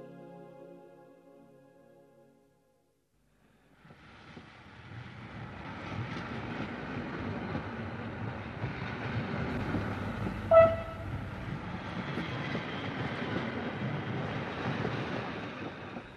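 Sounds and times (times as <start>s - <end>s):
train running on rails with rattling carriages: 3.7s - 16.1s
brief sharp metallic squeal or clank: 10.5s - 11.4s.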